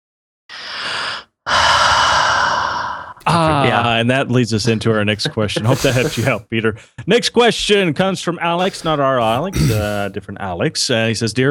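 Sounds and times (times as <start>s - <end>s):
person breathing heavily: 0.5s - 3.2s, 5.6s - 6.4s, 8.6s - 10.2s
speech: 3.3s - 11.4s.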